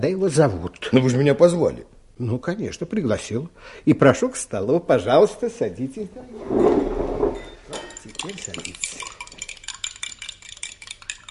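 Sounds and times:
speech: 0.0 - 6.9, 8.2 - 9.2
spoons clinking against a cup while stirring sugar: 7.7 - 11.3.

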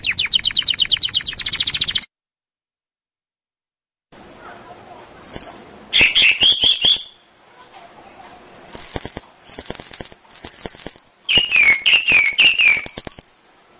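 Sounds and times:
canary training song of chirps and whistled tones: 0.0 - 2.1, 5.2 - 13.6.

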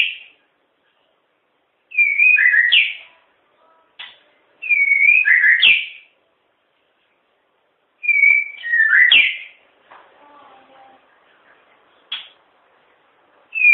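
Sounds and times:
white-rumped shama singing whistled phrases: 1.9 - 3.1, 4.6 - 6.1, 8.0 - 9.6, 13.5 - 13.7.

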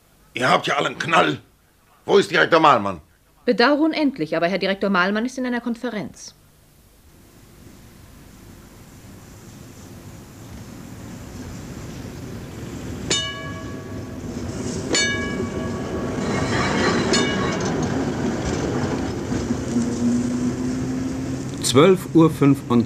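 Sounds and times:
speech: 0.4 - 1.5, 2.1 - 6.4, 21.7 - 22.8
city tram motor car rolling slowly through its depot in hot midday sun: 7.4 - 22.8
sharp metallic bell-like clanks: 14.7 - 18.7.

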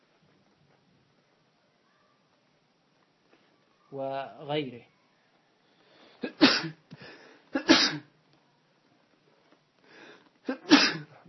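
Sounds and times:
speech: 3.9 - 4.9
person sneezing during a religious lesson: 6.2 - 6.8, 7.5 - 8.1, 10.4 - 11.2.

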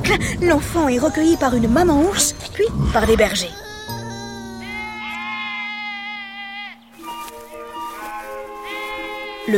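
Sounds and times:
speech: 0.1 - 3.7
sheep and goats bleating: 2.8 - 9.5.

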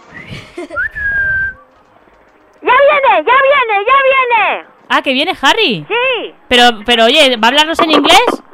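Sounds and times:
person whistling loudly to call someone: 0.1 - 1.6
speech: 0.6 - 1.2, 3.2 - 8.4.

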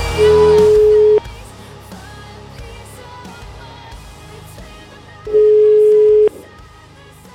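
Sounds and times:
telephone ringback tone while an outgoing call is placed: 0.2 - 1.3, 5.3 - 6.4.

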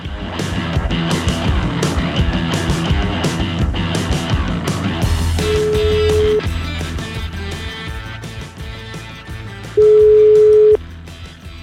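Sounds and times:
busy music bed: 0.0 - 11.6
telephone ringback tone while placing a call: 5.4 - 6.4, 9.8 - 10.8.

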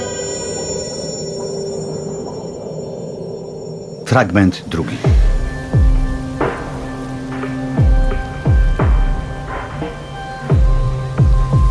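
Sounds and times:
speech: 4.1 - 5.9
steady rain slanting against the windows of small houses: 5.0 - 11.6.

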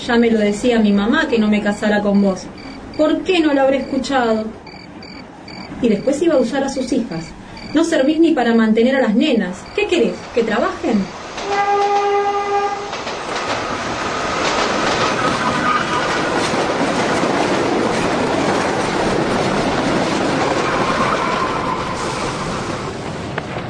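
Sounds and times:
speech: 0.0 - 4.6, 5.8 - 11.2
crowded passenger train rumbling and rattling in motion: 0.0 - 23.6
train horn blast: 11.4 - 12.9.

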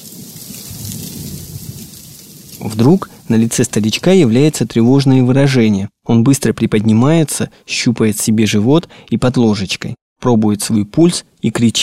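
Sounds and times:
heavy pouring rain: 0.0 - 4.7
speech: 2.6 - 11.8.

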